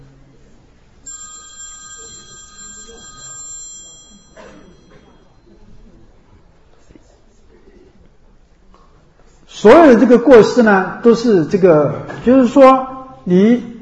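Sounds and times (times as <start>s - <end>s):
alarm clock ringing with a high-pitched electronic tone: 1.0s - 5.6s
speech: 9.6s - 13.7s.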